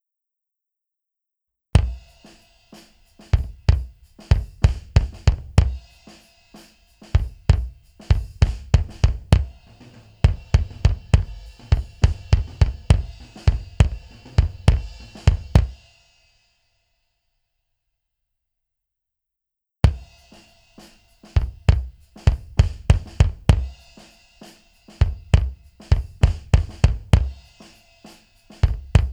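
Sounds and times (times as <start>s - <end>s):
kick drum: 1.8s - 15.9s, 19.8s - 24.1s, 24.9s - 29.1s.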